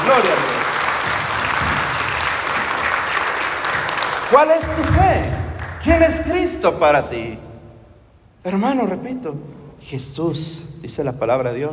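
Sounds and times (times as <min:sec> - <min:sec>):
crowd applauding in praise of God: 0:00.0 - 0:06.0
speech: 0:00.1 - 0:00.5, 0:04.3 - 0:07.5, 0:08.4 - 0:11.7.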